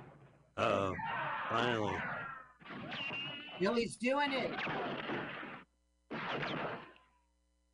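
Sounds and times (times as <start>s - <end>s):
speech: 0.6s - 4.8s
gunshots from a gun fired in a film scene: 1.8s - 7.0s.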